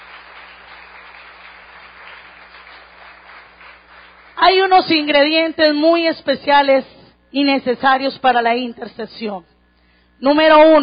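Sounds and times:
church congregation applauding during a sermon: 0.0s - 5.0s
speech: 4.4s - 9.5s, 10.2s - 10.8s.

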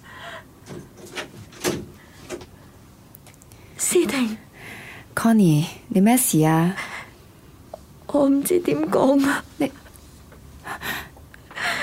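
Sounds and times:
door being opened with soft knocks and scrapes: 0.6s - 2.5s
speech: 4.1s - 4.4s, 5.2s - 6.8s, 8.2s - 9.8s.

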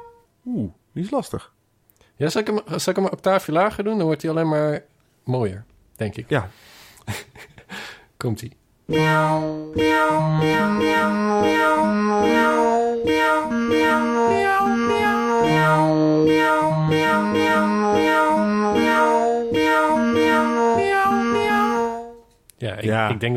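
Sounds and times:
speech: 0.6s - 1.6s, 2.2s - 7.5s, 8.2s - 15.0s, 22.7s - 23.3s
cat meows pitched down an octave: 9.0s - 22.0s.

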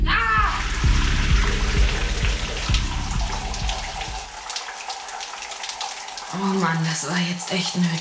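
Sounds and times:
shower running: 0.2s - 7.9s
speech: 6.7s - 7.9s.

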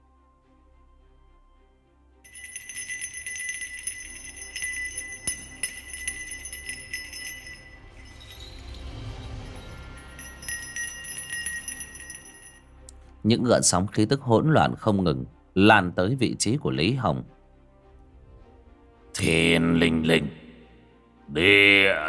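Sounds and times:
silver bell shaken in the hand: 2.3s - 12.9s
speech: 13.3s - 17.4s, 19.2s - 20.3s.

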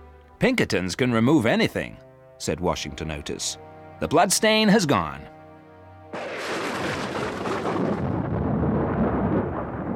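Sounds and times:
speech: 0.4s - 5.4s
thunder crashing over a house during a storm: 6.2s - 9.9s.

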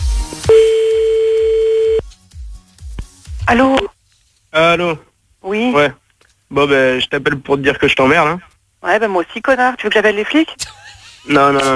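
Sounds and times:
telephone ringing tone during an outgoing call: 0.5s - 2.0s
speech: 3.5s - 3.9s, 4.5s - 11.7s.

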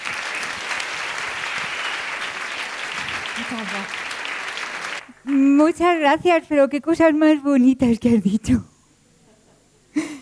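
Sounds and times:
audience applause at a storytelling performance: 0.0s - 5.4s
speech: 3.4s - 4.0s, 5.2s - 8.7s.

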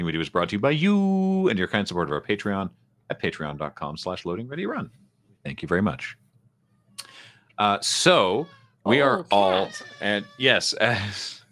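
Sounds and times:
speech: 0.0s - 6.2s, 7.0s - 11.4s
cat meowing for attention: 8.1s - 10.8s.

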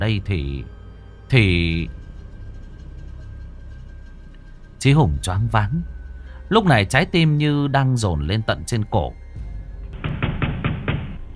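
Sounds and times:
speech: 0.0s - 2.0s, 4.8s - 5.9s, 6.5s - 9.2s
pounding on a door in an old house: 9.9s - 11.2s.

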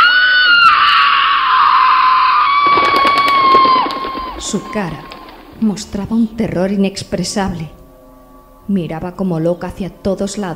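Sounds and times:
woman screaming in a jungle: 0.0s - 5.3s
crackling noise possibly of fleeing birds: 2.6s - 6.6s
speech: 4.5s - 7.8s, 8.7s - 10.5s.

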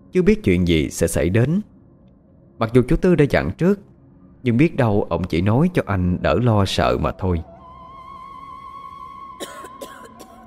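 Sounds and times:
speech: 0.1s - 1.7s, 2.6s - 7.5s
harsh hoarse coughing: 9.4s - 10.4s.

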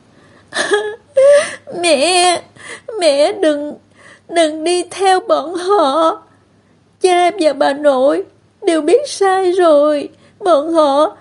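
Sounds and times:
girl bursting into tears, crying aloud: 0.6s - 3.7s
speech: 1.8s - 6.3s, 7.0s - 11.1s.

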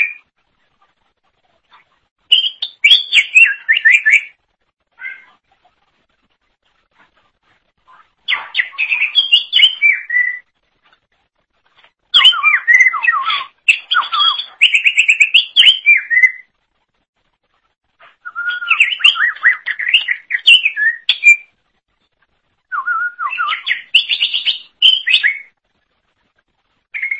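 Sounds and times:
Greater Green Leafbird singing: 2.3s - 4.4s, 8.3s - 10.4s, 12.1s - 16.5s, 18.2s - 21.5s, 22.7s - 25.5s, 27.0s - 27.1s.

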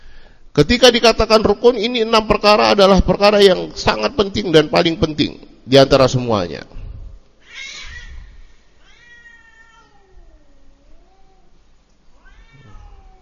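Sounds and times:
speech: 0.6s - 6.8s
cats yowling while mating: 7.4s - 11.6s, 12.2s - 13.2s.

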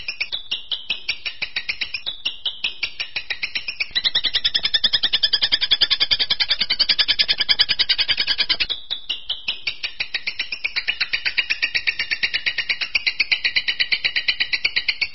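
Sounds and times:
long-tailed shrike harsh chattering song: 0.9s - 15.1s.

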